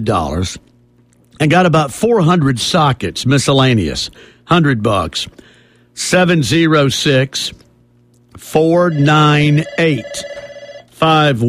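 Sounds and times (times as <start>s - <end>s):
speech: 0.0s - 0.7s, 1.4s - 7.6s, 8.4s - 10.3s, 11.0s - 11.4s
telephone ringing: 8.7s - 11.0s.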